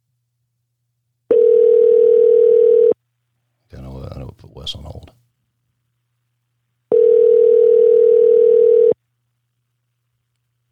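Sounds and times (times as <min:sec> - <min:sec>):
steady phone dialing tone: 0:01.3 - 0:03.0, 0:06.9 - 0:09.0.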